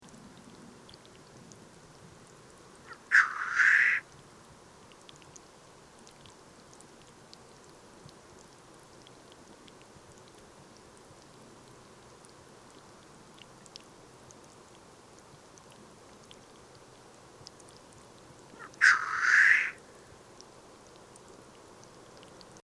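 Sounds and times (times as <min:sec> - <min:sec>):
black grouse calling: 0:02.9 - 0:04.0, 0:18.6 - 0:20.0.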